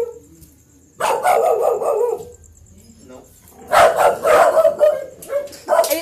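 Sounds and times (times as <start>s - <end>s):
dogs barking and yipping: 1.0s - 2.4s, 3.6s - 6.0s.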